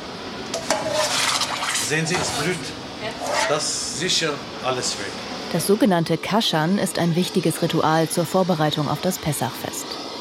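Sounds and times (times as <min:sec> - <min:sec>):
hot water pouring over metal dishes on a stainless steel counter in Basel: 0:00.6 - 0:02.7
speech: 0:01.9 - 0:10.0.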